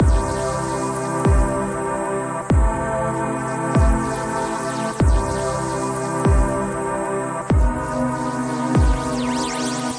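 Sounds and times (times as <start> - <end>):
aliased synth pad chord progression: 0.0 - 9.9.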